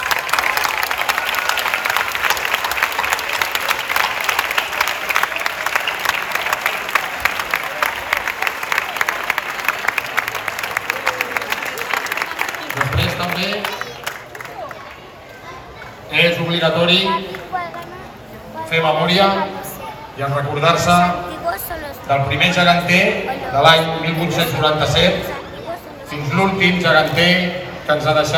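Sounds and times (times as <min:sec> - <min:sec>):
large crowd applauding: 0:00.0 - 0:16.1
faint voices and cheers: 0:00.0 - 0:28.3
speech: 0:16.6 - 0:17.2, 0:18.7 - 0:19.5, 0:20.2 - 0:21.2, 0:22.1 - 0:25.3, 0:26.4 - 0:28.3.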